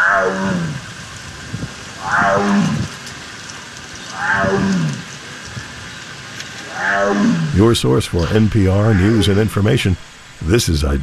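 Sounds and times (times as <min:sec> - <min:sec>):
Sumatran tiger roaring: 0:00.0 - 0:01.0, 0:02.0 - 0:03.1, 0:04.1 - 0:05.2, 0:06.6 - 0:10.6
faint noise: 0:00.0 - 0:11.0
speech: 0:00.2 - 0:00.8, 0:07.6 - 0:11.0.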